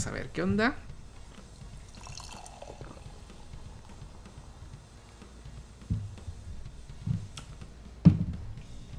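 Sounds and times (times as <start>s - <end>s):
Hazy IPA beer fizzing as it is poured from a can: 0.2s - 7.0s.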